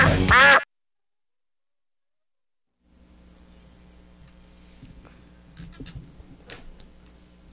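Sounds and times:
duck quacking: 0.0 - 0.6
low steady hum: 2.8 - 7.5.

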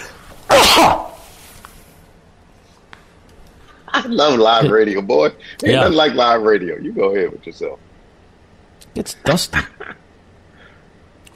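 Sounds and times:
loud human sneeze: 0.0 - 1.3
speech: 4.0 - 7.9, 9.0 - 10.0.

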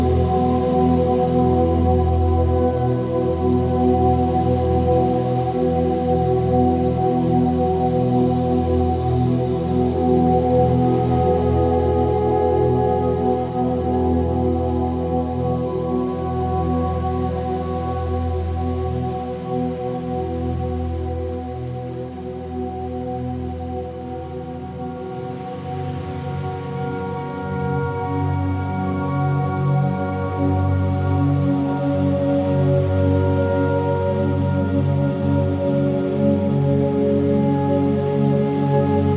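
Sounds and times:
faint soft hiss: 0.0 - 39.1
slow droning music of layered sustained tones tuned to 432Hz: 0.0 - 39.1.

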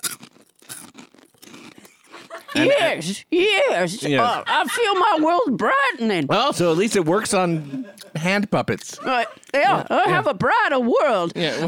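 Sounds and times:
crisp Poppables snacks being chewed: 0.0 - 2.1
laughter: 1.9 - 3.0, 4.0 - 6.0, 7.2 - 10.3, 11.4 - 11.6
speech: 2.6 - 11.6.

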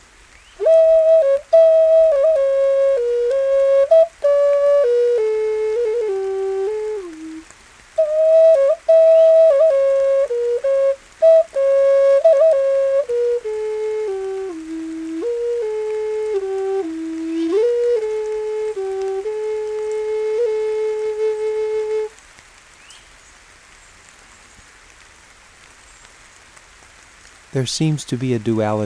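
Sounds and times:
flute playing a slow clear melody: 0.6 - 22.2
speech: 27.6 - 28.8.

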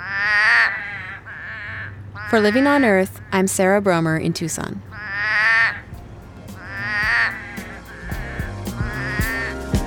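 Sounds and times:
toads trilling at a neighborhood pond: 0.0 - 3.4, 4.8 - 5.9, 6.5 - 9.7
speech: 2.3 - 4.9.

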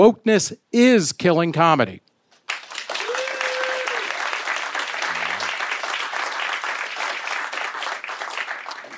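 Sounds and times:
speech: 0.0 - 2.1
audience applause: 2.5 - 8.9
crowd whooping: 2.9 - 5.8.

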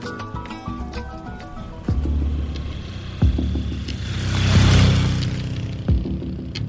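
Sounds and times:
car engine drone on a drive from Chiclayo to the Marañón Canyon: 0.0 - 6.6
rushing road noise: 0.0 - 6.6.

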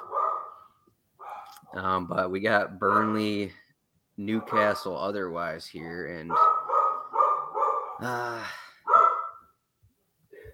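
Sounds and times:
dog barking: 0.0 - 1.8, 2.9 - 3.2, 4.4 - 4.8, 6.3 - 8.0, 8.8 - 9.5
speech: 1.7 - 3.6, 4.2 - 6.5, 8.0 - 8.6.

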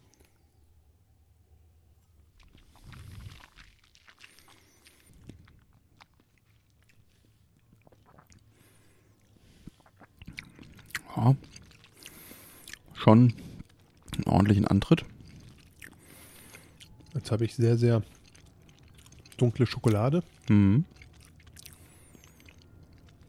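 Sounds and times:
person sipping whisky: 2.4 - 5.7, 7.0 - 14.3, 15.0 - 17.1, 17.8 - 23.2
swallowing: 2.4 - 23.2
speech: 11.2 - 11.6, 13.0 - 13.5, 14.4 - 15.2, 17.2 - 18.2, 19.4 - 21.0.

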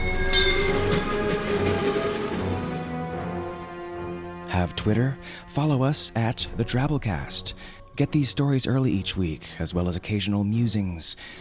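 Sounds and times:
sustained metallic whine of a passing train: 0.0 - 3.4
train rumbling past on the tracks: 0.0 - 3.4
speech: 4.6 - 11.4.

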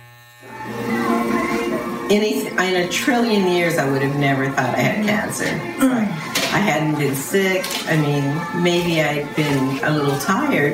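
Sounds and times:
electric hair clippers buzzing while shaving a woman's head in a kitchen: 0.0 - 6.6
speech: 2.1 - 10.7.

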